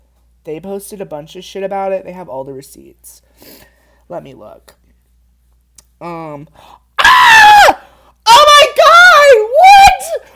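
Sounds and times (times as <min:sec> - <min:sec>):
speech: 0:00.4 - 0:04.8, 0:06.0 - 0:06.8
person screaming in shock: 0:07.0 - 0:10.3.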